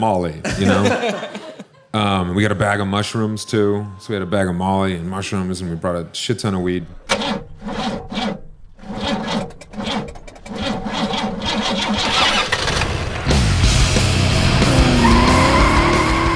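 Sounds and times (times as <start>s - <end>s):
speech: 0.0s - 8.0s
laughter: 0.4s - 2.0s
old rickety Dodge convertible car engine cranking, starting and revving: 7.0s - 16.3s.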